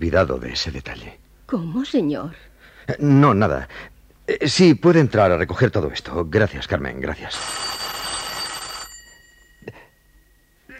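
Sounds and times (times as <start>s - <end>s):
speech: 0.0s - 7.8s
telephone bell ringing: 7.3s - 10.7s.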